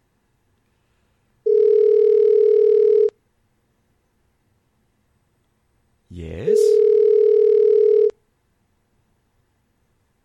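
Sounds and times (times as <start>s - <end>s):
steady electronic telephone ringing tone: 1.5s - 3.2s, 6.5s - 8.2s.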